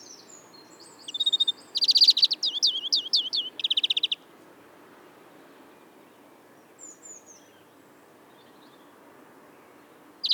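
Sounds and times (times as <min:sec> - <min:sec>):
European greenfinch Chloris chloris singing: 0:00.8 - 0:04.2.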